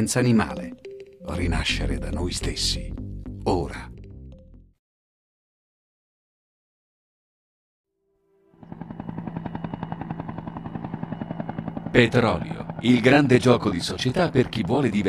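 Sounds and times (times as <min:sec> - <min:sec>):
speech: 0:00.0 - 0:03.9, 0:11.9 - 0:15.0
helicopter sound effect rotor chop: 0:08.6 - 0:15.0.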